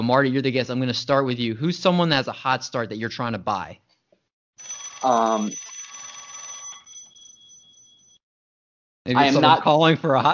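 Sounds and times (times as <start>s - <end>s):
speech: 0.0s - 3.8s, 4.6s - 5.7s, 9.0s - 10.3s
old-style dial telephone bell ringing: 4.6s - 8.2s.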